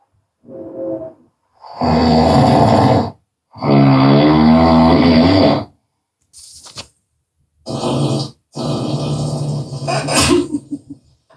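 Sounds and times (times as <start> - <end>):
person imitating rhythmic snoring: 0.5 - 5.8, 7.6 - 10.6.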